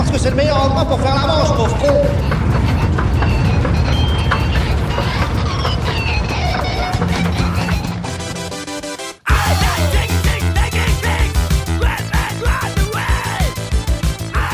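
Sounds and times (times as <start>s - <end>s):
electric train running on rails: 0.0s - 14.5s
metallic squeals of train on rails: 0.1s - 8.3s
speech: 0.2s - 2.4s.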